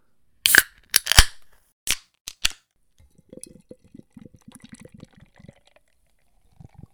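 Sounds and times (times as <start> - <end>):
can of IPA beer cracked open: 0.5 - 2.6
fizzing gurgling IPA beer pour: 3.0 - 6.9.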